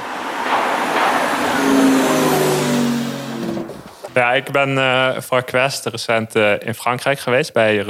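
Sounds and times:
electric car's artificial driving sound: 0:00.0 - 0:04.2
soft road noise: 0:00.0 - 0:04.8
speech: 0:04.2 - 0:07.8.

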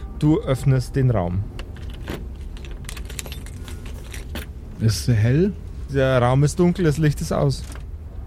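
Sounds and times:
speech: 0:00.2 - 0:01.6, 0:04.8 - 0:07.8
bunch of keys jangling: 0:01.6 - 0:04.5.

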